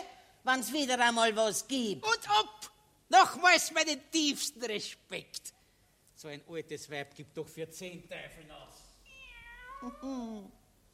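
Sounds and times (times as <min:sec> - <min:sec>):
speech: 0:00.5 - 0:05.6, 0:06.2 - 0:08.9, 0:09.8 - 0:10.6
cat meowing by a window: 0:09.1 - 0:10.2.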